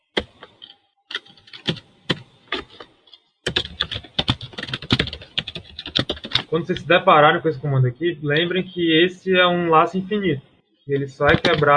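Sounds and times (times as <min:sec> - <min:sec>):
typing on a computer keyboard: 0:00.2 - 0:02.9, 0:03.5 - 0:06.9, 0:11.0 - 0:11.7
speech: 0:06.5 - 0:11.7.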